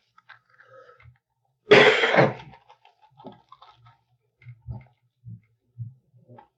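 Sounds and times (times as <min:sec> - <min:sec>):
person with a cold giving a harsh cough: 0:01.7 - 0:02.5.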